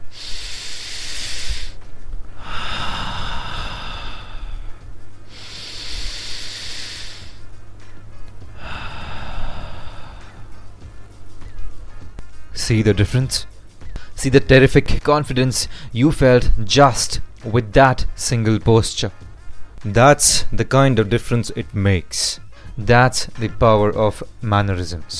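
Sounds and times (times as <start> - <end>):
person breathing slowly and deeply: 0.0 - 7.5, 8.5 - 10.7, 13.8 - 14.2, 15.7 - 16.0
speech: 12.7 - 13.5, 14.2 - 19.2, 19.8 - 25.1.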